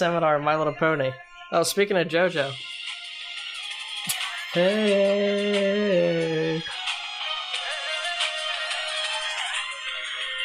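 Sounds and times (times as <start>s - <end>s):
speech: 0.0s - 2.7s, 4.5s - 6.8s
phone ringtone playing a bright busy melodic tune: 2.5s - 10.4s.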